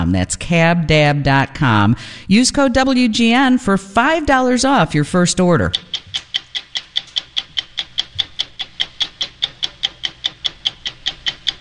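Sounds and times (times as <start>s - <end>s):
speech: 0.1s - 6.3s
stopwatch ticking: 2.3s - 11.6s.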